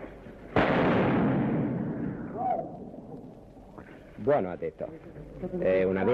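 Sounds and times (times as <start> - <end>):
pistol shot in street fighting: 0.5 - 2.6
speech: 4.2 - 6.1.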